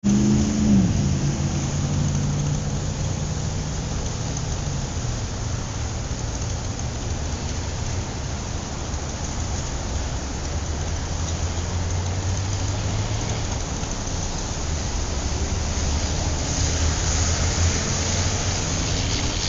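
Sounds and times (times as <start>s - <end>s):
city traffic: 0.0s - 19.4s.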